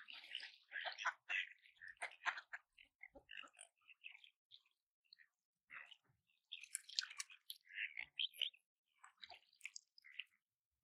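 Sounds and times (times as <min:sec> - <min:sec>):
ducks splashing and dabbling while being fed peas at a lake: 0:00.0 - 0:04.2, 0:06.5 - 0:08.3.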